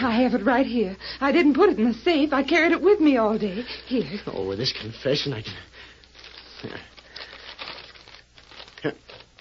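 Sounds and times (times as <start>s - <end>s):
speech: 0.2s - 5.7s, 6.6s - 6.9s, 8.8s - 9.0s
paper unfolded, crinkling and rustling: 6.0s - 9.3s
envelope torn open: 6.1s - 9.3s.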